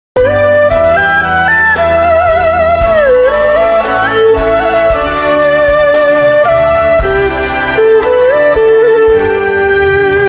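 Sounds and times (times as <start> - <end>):
erhu: 0.2 - 10.2.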